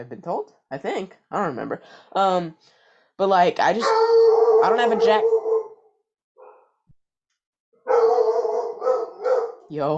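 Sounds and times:
speech: 0.0s - 5.4s, 9.7s - 9.9s
dog barking: 3.8s - 6.8s, 7.8s - 9.7s.

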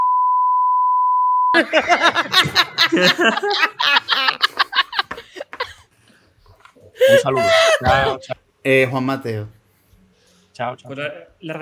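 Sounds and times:
steady high-pitched censor bleep: 0.0s - 1.6s
speech: 1.5s - 4.6s, 7.0s - 9.6s, 10.6s - 11.6s
lively laughter: 1.6s - 5.8s, 7.0s - 8.4s
animated voices: 6.8s - 8.4s.

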